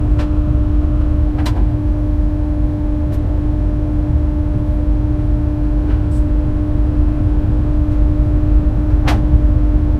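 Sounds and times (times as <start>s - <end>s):
monorail interior ambience: 0.0s - 9.9s.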